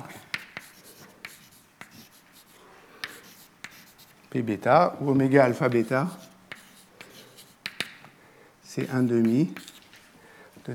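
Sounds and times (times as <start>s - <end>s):
writing on a board during a lecture: 0.0s - 4.2s, 5.6s - 8.1s, 8.8s - 10.0s
speech: 4.3s - 6.3s, 8.8s - 9.7s
sharp taps on a board: 7.6s - 8.0s.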